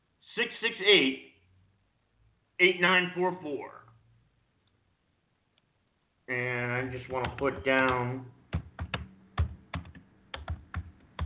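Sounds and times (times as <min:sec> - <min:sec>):
speech: 0:00.4 - 0:01.3, 0:02.6 - 0:03.8, 0:06.3 - 0:08.4
computer keyboard typing: 0:06.9 - 0:11.2.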